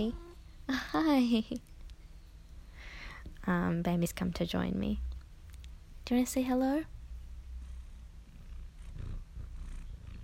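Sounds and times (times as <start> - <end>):
speech: 0.0 - 1.7, 3.4 - 5.1, 6.1 - 6.9
male cat purring: 7.0 - 10.2.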